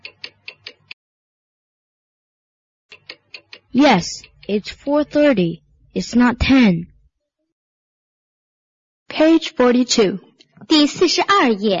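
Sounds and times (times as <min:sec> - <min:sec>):
clock ticking: 0:00.0 - 0:01.0, 0:02.9 - 0:06.8
speech: 0:03.7 - 0:06.9, 0:09.2 - 0:11.7.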